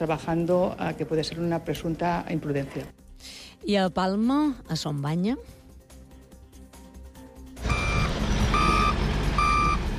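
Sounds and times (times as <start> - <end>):
speech: 0.0 - 5.6
excavator reversing alarm beeps during demolition of huts: 7.6 - 9.8.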